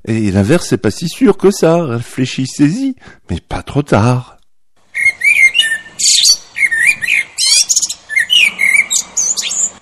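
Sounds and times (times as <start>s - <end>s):
speech: 0.0s - 4.4s
blackbird singing: 4.9s - 9.8s.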